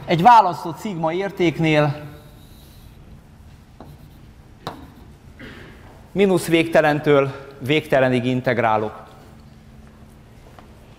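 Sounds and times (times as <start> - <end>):
steady low noise: 0.0 - 10.9
speech: 0.1 - 2.1, 6.1 - 9.0
scratchy strokes drawing on a board: 1.2 - 5.4.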